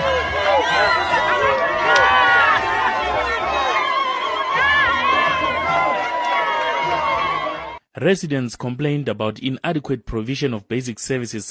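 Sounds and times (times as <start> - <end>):
large crowd cheering and ululating in a stadium: 0.0 - 7.8
speech: 8.0 - 11.4.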